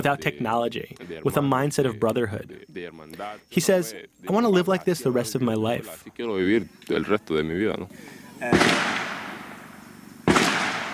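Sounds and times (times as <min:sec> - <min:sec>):
speech: 0:00.0 - 0:09.1
gunshots outdoors: 0:08.4 - 0:10.9.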